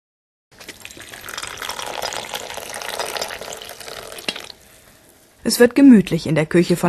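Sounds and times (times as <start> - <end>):
tea being poured into a cup in a kitchen in Falkenberg: 0.6 - 5.4
speech: 5.4 - 6.8.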